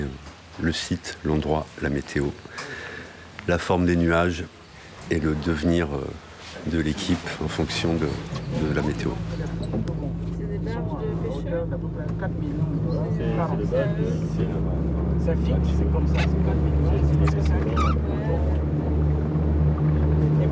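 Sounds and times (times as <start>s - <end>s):
speech: 0.0s - 10.8s, 11.5s - 18.7s
boat motor droning as the boat departs in the Gabonese mangroves: 7.6s - 20.5s
indistinct voices: 7.6s - 20.5s.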